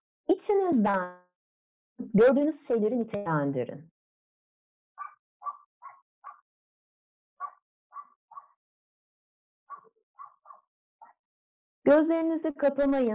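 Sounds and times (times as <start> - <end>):
speech: 0.3 - 1.2, 2.0 - 3.9, 11.9 - 13.1
dog barking outside the room: 5.0 - 6.4, 7.4 - 8.6, 9.7 - 11.2.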